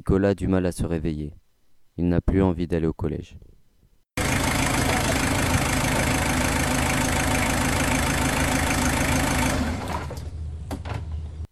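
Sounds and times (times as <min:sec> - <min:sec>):
speech: 0:00.0 - 0:01.4, 0:02.0 - 0:03.5
car engine running: 0:04.2 - 0:10.7
car stopping in front of a school: 0:04.2 - 0:11.5.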